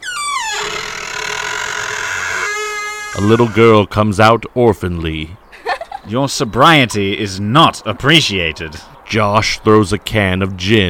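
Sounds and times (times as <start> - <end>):
house door hinge creaking open: 0.0 - 3.8
speech: 3.2 - 5.4, 6.1 - 10.8.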